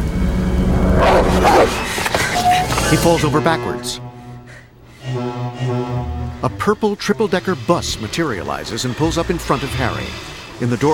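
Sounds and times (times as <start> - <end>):
loud steady rumbling: 0.0 - 3.4
black dog barking and yelping: 1.0 - 1.9
speech: 2.9 - 4.1, 6.4 - 10.9.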